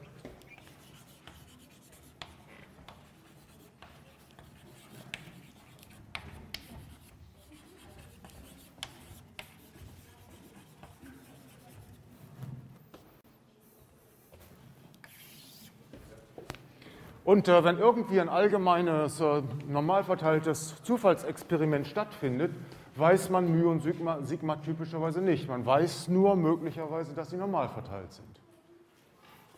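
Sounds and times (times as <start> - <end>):
handwriting scratching during a statistics lesson: 0.0 - 12.2, 15.0 - 15.8
speech: 17.3 - 28.4.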